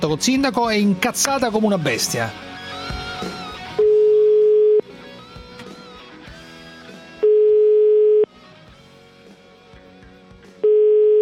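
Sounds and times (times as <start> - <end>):
speech: 0.0 - 2.5
telephone ringback tone before a call: 3.8 - 4.8, 7.2 - 8.3, 10.6 - 11.1.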